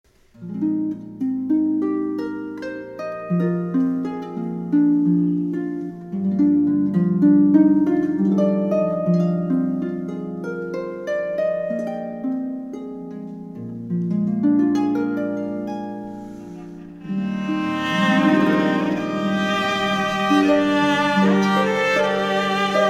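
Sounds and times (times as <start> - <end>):
harp: 0.1 - 22.8
cello: 16.0 - 22.8
violin: 16.1 - 22.8.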